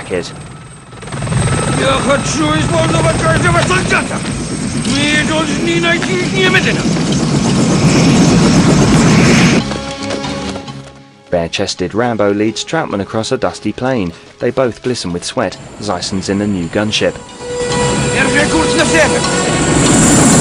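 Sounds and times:
helicopter heavy rotor and engine roar while landing: 0:00.0 - 0:11.1, 0:14.2 - 0:20.3
speech: 0:00.1 - 0:00.6, 0:01.8 - 0:08.6, 0:09.5 - 0:09.8, 0:11.3 - 0:17.7, 0:18.8 - 0:20.3.

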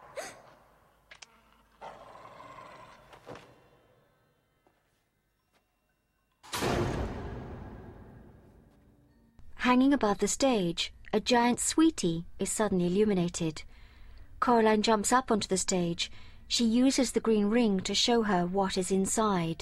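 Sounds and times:
harsh burst of barking and growling: 0:01.7 - 0:03.1
speech: 0:09.7 - 0:13.7, 0:14.4 - 0:19.6.

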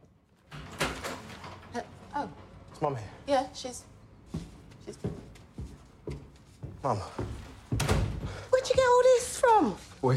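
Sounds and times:
front door being opened: 0:00.5 - 0:02.6
speech: 0:01.8 - 0:03.9, 0:06.8 - 0:07.4, 0:08.8 - 0:10.1.

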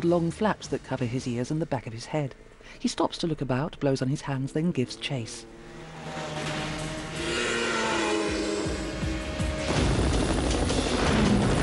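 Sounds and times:
speech: 0:00.0 - 0:06.4
helicopters flying overhead: 0:01.0 - 0:11.4.

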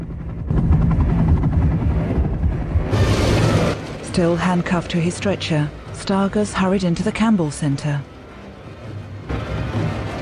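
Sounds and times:
helicopter landing on a rooftop, rotor thumping drone: 0:00.0 - 0:04.0
speech: 0:04.2 - 0:08.1.

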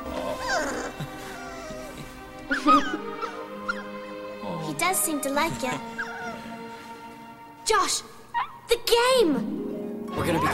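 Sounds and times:
puppy whimpering and whining while being hugged: 0:00.1 - 0:03.9, 0:05.8 - 0:06.5, 0:08.4 - 0:08.6
speech: 0:04.9 - 0:06.0, 0:07.7 - 0:08.2, 0:08.8 - 0:10.5.

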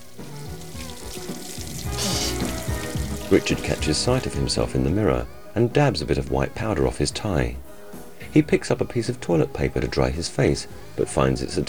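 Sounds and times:
water running in a washroom sink as someone washes: 0:00.0 - 0:04.7
speech: 0:03.3 - 0:07.7, 0:08.4 - 0:11.6.

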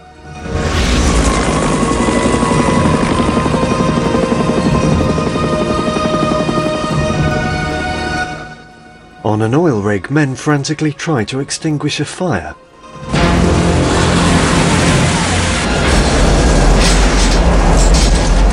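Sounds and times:
helicopter rotor chopping across a snow-capped mountain landscape: 0:00.4 - 0:08.5, 0:13.1 - 0:18.5
speech: 0:09.3 - 0:12.6.

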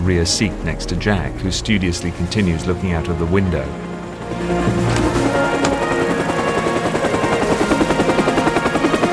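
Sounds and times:
speech: 0:00.0 - 0:05.2
helicopter engine whine at full power: 0:02.0 - 0:09.1
blue helicopter rotor thumping while lifting off through foliage: 0:04.3 - 0:08.9.

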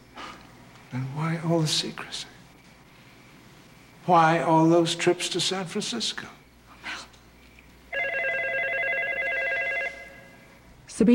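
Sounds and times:
speech: 0:00.9 - 0:02.3, 0:04.0 - 0:06.4, 0:11.0 - 0:11.1
telephone ringing with an electronic trill: 0:07.9 - 0:10.6.

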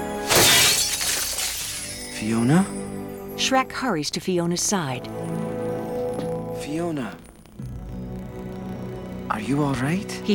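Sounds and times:
cathedral window glass shattering from a punch: 0:00.2 - 0:02.2
speech: 0:02.2 - 0:05.4, 0:06.7 - 0:07.7, 0:09.4 - 0:10.3.

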